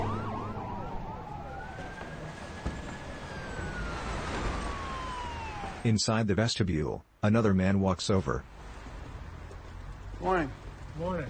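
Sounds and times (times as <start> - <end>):
police car sirens wailing through a city: 0.0 - 6.0
steady rumble of city traffic: 0.0 - 11.2
speech: 5.8 - 8.6, 10.2 - 11.2.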